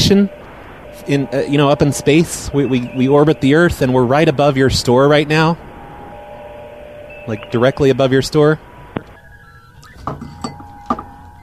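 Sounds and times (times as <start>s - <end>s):
speech: 0.1s - 0.4s, 1.1s - 5.7s, 7.2s - 8.7s, 10.1s - 10.4s
empty drinking glass clinking as it is knocked over: 10.0s - 11.4s.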